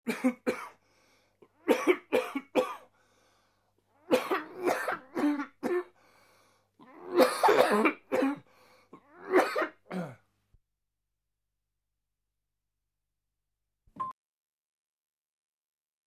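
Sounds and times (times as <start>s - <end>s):
person coughing: 0.0s - 0.8s, 1.6s - 2.9s, 4.1s - 5.9s, 6.9s - 8.4s, 9.0s - 10.2s.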